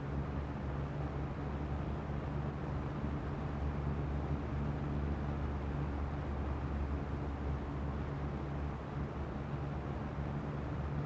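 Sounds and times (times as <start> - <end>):
box fan running: 0.0 - 11.0.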